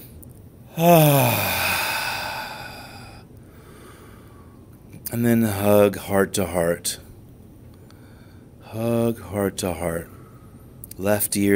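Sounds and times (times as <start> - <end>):
deep breath let out as a loud voiced sigh: 0.7 - 4.6
speech: 0.8 - 1.6, 5.1 - 7.0, 8.7 - 10.2, 11.0 - 11.5.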